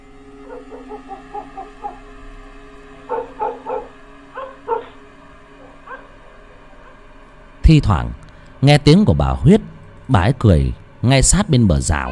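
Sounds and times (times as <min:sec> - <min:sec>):
faint steady hum: 0:00.0 - 0:12.1
dog barking at night: 0:00.4 - 0:02.0, 0:03.1 - 0:05.0, 0:05.6 - 0:07.0
speech: 0:07.7 - 0:12.1.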